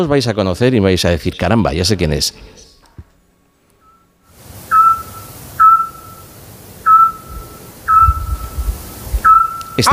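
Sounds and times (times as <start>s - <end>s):
speech: 0.0s - 2.7s, 9.8s - 9.9s
scops owl whistling at night in a town centre: 4.7s - 9.9s.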